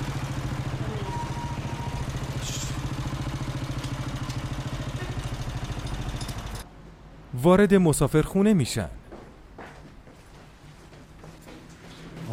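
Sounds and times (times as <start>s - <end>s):
motorcycle engine idling outside a guesthouse: 0.0s - 6.6s
speech: 7.4s - 9.0s.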